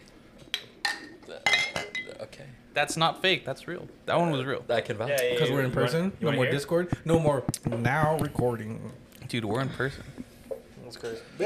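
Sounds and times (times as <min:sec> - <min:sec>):
drinking glasses clinking in a toast: 0:00.8 - 0:02.2
speech: 0:02.3 - 0:10.2, 0:10.9 - 0:11.4.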